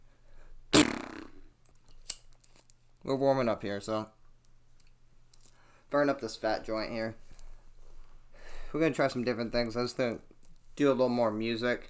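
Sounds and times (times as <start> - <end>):
loud raspy fart: 0.7 - 1.5
speech: 3.1 - 4.2, 5.9 - 7.2, 8.7 - 11.8.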